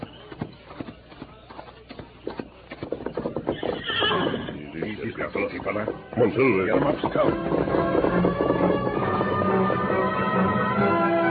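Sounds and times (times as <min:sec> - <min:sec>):
horse hooves clip-clopping: 0:00.0 - 0:11.2
horse whinnying: 0:03.2 - 0:05.0.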